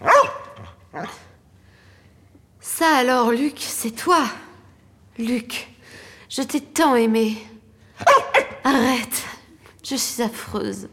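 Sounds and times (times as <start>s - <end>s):
dog barking on a film set: 0.0s - 1.2s, 8.0s - 8.6s
speech: 2.8s - 4.4s, 5.2s - 5.7s, 6.3s - 9.3s, 9.9s - 10.9s.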